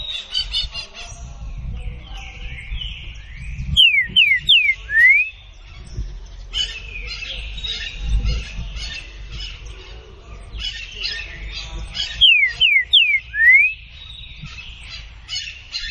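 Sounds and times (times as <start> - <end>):
softer scratchy bird chatter: 0.0 - 15.8
green-winged saltator singing classic song: 3.7 - 5.4, 12.0 - 13.9.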